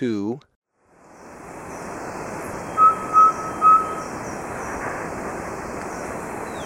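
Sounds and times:
subtropical pygmy owl whistling in Ecuador: 0:02.6 - 0:05.0.

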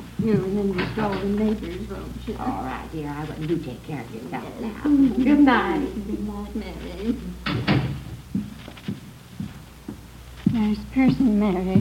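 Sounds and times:
speech: 0:00.2 - 0:07.9, 0:10.6 - 0:11.7
door opening and closing as a guest leaves: 0:07.4 - 0:09.0.

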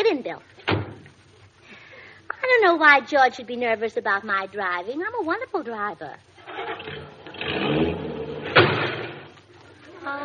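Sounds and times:
speech: 0:00.0 - 0:00.6, 0:02.4 - 0:07.8, 0:10.0 - 0:10.2
car engine revving and accelerating: 0:06.4 - 0:09.3.

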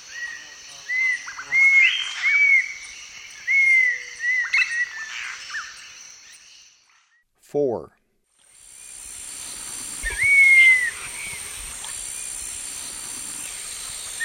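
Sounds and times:
steady high insect hum: 0:00.0 - 0:07.0, 0:08.4 - 0:14.2
cinnamon attila song of slurred arched whistles: 0:00.1 - 0:05.8, 0:08.8 - 0:14.2
speech: 0:07.5 - 0:08.0.

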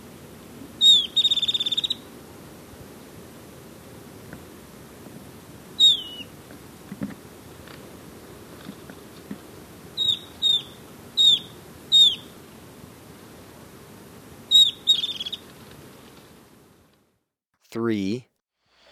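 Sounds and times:
soft background hiss: 0:00.0 - 0:18.9
golden-faced tyrannulet giving high thin calls in Ecuador: 0:00.8 - 0:02.0, 0:05.8 - 0:06.3, 0:10.0 - 0:12.3, 0:14.5 - 0:15.4
speech: 0:17.8 - 0:18.3.

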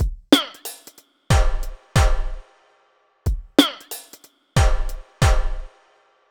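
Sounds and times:
deep beat: 0:00.0 - 0:00.7, 0:01.3 - 0:02.4, 0:03.3 - 0:05.7.

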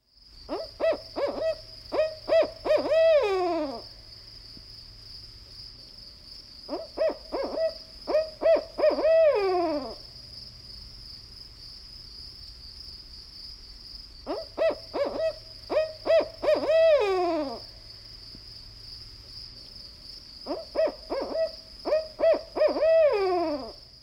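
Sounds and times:
barred owl hooting: 0:00.5 - 0:03.8, 0:06.7 - 0:10.0, 0:14.3 - 0:17.7, 0:20.4 - 0:23.8.

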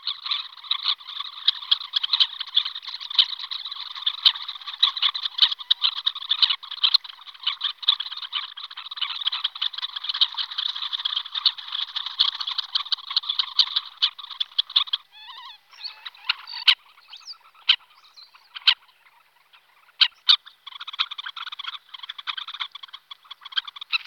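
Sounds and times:
red-necked phalarope giving sharp twittering calls: 0:00.0 - 0:24.0.

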